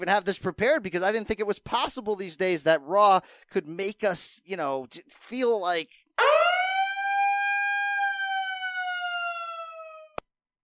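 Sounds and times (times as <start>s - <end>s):
speech: 0.0s - 6.4s
loud siren: 6.2s - 10.2s.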